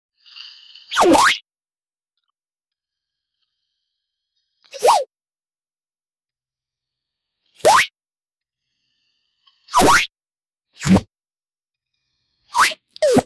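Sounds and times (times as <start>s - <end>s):
cartoon style comical banana peel slip: 0.9s - 1.4s, 4.7s - 5.1s, 7.6s - 7.9s, 9.7s - 10.1s, 10.8s - 11.1s, 12.5s - 13.2s.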